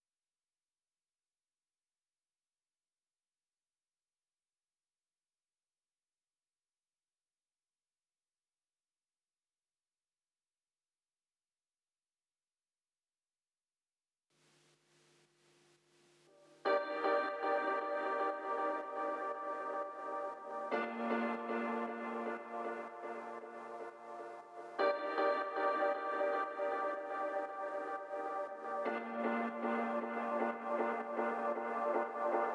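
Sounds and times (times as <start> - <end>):
spacey echoing melody loop in G minor: 16.5 - 32.5.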